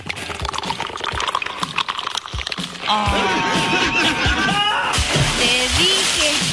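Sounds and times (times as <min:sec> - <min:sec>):
churning sloshing water and bubbling in a swimming pool: 0:00.0 - 0:02.9, 0:04.9 - 0:06.5
speech: 0:02.9 - 0:03.3
laughter: 0:02.9 - 0:05.0
person falling into a swimming pool with a splash: 0:04.9 - 0:06.5.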